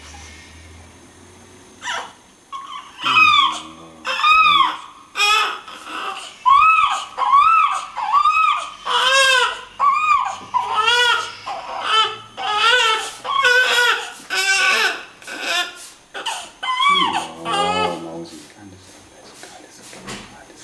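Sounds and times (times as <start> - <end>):
newborn girl fussing and crying: 1.8 - 18.2
father's low soothing voice: 3.0 - 4.7, 16.9 - 20.6.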